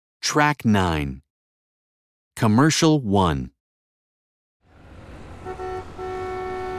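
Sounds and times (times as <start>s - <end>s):
speech: 0.2s - 1.2s, 2.4s - 3.5s
steady engine drone of a traffic jam: 4.6s - 6.7s
car horns honking in a traffic jam: 4.9s - 6.7s.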